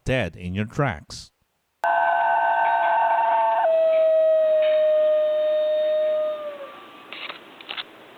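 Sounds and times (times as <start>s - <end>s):
speech: 0.0s - 1.3s
dingo-like dog howling: 1.8s - 7.2s.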